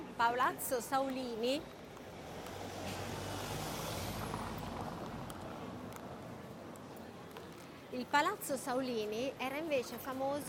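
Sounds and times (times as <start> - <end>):
street traffic of passing cars rumbling by Palazzo Fede: 0.0 - 10.4
speech: 0.2 - 1.8, 7.9 - 10.4
passing vehicle: 2.1 - 6.5.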